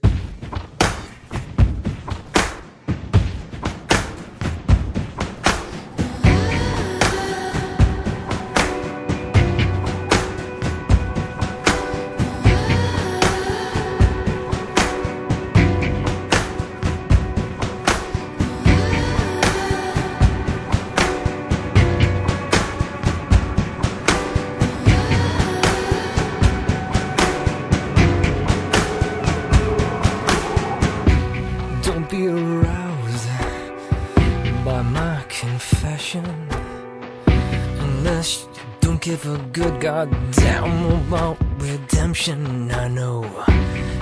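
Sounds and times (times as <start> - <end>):
music track with heavy steady drum beat: 0.0 - 36.7, 37.3 - 44.0
sustained instrumental tones: 6.2 - 35.2.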